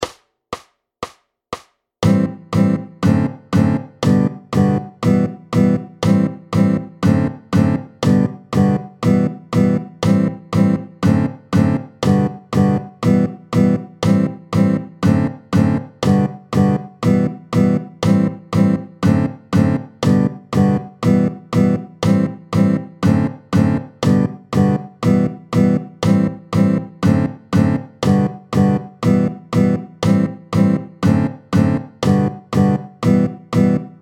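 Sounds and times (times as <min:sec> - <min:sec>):
fast guitar piece: 0:02.0 - 0:34.0.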